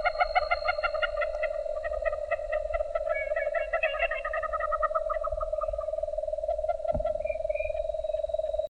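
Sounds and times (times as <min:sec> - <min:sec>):
nightjar churring as a low continuous trill: 0:00.0 - 0:08.6.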